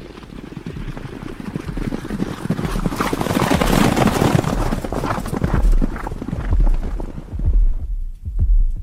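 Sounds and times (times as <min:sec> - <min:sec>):
horse hoofbeats galloping: 0:00.0 - 0:08.8
low rumble: 0:03.6 - 0:08.8.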